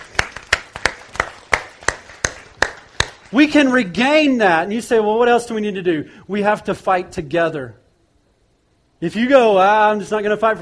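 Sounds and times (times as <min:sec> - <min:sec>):
crowd clapping in a steady rhythmic beat: 0:00.0 - 0:03.6
speech: 0:03.3 - 0:07.8, 0:09.0 - 0:10.6.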